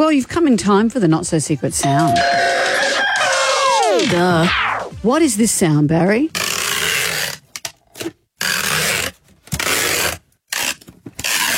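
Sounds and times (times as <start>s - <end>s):
speech: 0.0s - 2.8s, 4.0s - 6.4s
packing tape being pulled off: 6.3s - 11.5s.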